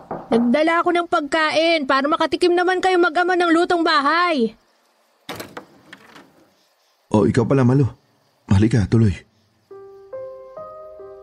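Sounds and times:
door rattling knocks as it swings: 0.0s - 0.6s, 5.3s - 6.5s
speech: 0.3s - 4.6s, 7.1s - 9.3s
door opening with a sudden loud clunk: 5.3s - 6.5s.

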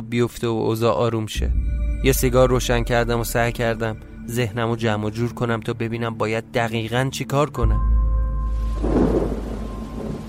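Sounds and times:
speech: 0.1s - 7.9s
low rumble of thunder: 1.4s - 5.0s, 8.4s - 10.2s
rain falling: 8.5s - 10.2s.

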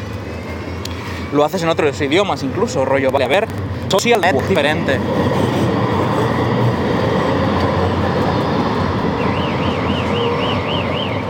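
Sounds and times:
speech: 1.3s - 5.5s
loud car roaring past in the street: 3.6s - 11.2s.

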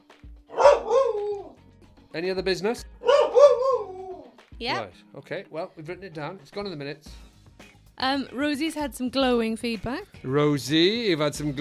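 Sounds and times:
dog barking: 0.5s - 1.5s, 3.0s - 4.2s
speech: 2.1s - 2.9s, 4.6s - 7.3s, 8.0s - 11.5s.

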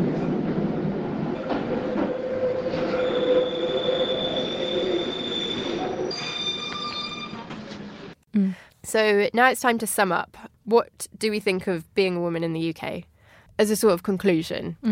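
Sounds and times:
London Underground Northern Line train rumbling through Euston station: 0.0s - 8.2s
Underground train wheels squealing: 2.1s - 7.4s
speech: 8.9s - 14.9s.

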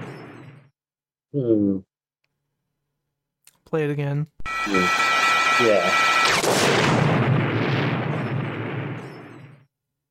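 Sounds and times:
speech: 1.3s - 1.9s, 3.7s - 7.0s
loud explosion with roaring blast: 6.2s - 9.7s.

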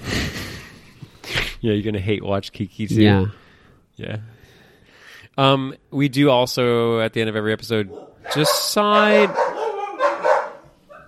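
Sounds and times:
speech: 1.6s - 3.4s, 4.0s - 4.4s, 5.3s - 9.5s
dog barking: 7.9s - 11.0s.

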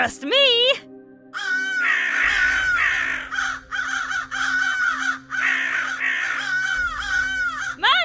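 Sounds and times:
speech: 0.0s - 0.6s
birds cawing loudly and harshly: 1.4s - 7.9s.

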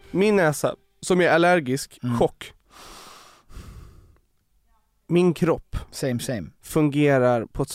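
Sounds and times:
speech: 0.1s - 2.9s, 5.1s - 7.7s
nasal breath: 2.7s - 4.2s.

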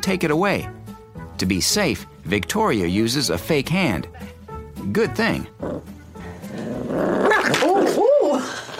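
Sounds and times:
speech: 0.0s - 0.8s, 1.4s - 5.9s
small puppy growling while guarding its food: 5.6s - 8.0s.

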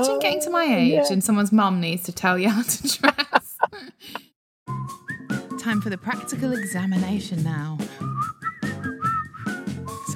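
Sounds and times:
speech: 0.0s - 3.3s, 5.7s - 7.8s
laughter: 2.5s - 4.3s
person whistling a wavering continuous melody: 4.7s - 7.2s, 8.0s - 10.1s.

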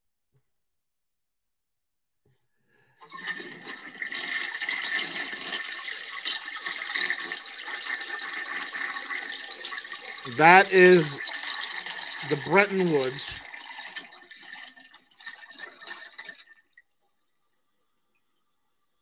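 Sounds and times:
toilet flushing: 3.0s - 16.7s
speech: 10.4s - 11.2s, 12.3s - 13.4s.

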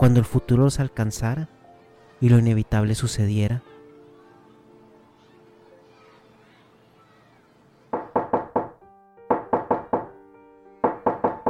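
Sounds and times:
speech: 0.0s - 1.6s, 2.2s - 3.7s
firm knocking on a door: 8.0s - 10.2s, 10.8s - 11.4s.

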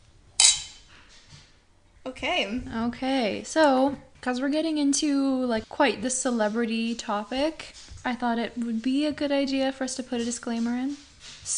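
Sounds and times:
two wine glasses clinking in a toast: 0.4s - 0.8s
speech: 2.1s - 11.5s.

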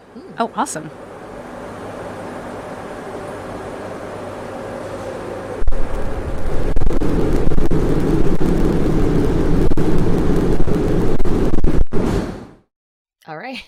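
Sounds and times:
speech: 0.2s - 1.1s
fusion plasma pulse rumbling roar inside a tokamak: 4.4s - 12.3s.

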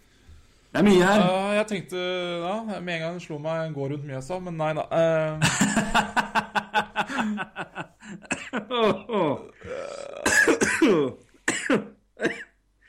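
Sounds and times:
speech: 0.7s - 6.4s, 7.2s - 12.5s
laughter: 5.4s - 9.5s
person having a coughing fit: 8.2s - 12.6s
throat clearing: 8.3s - 12.6s.

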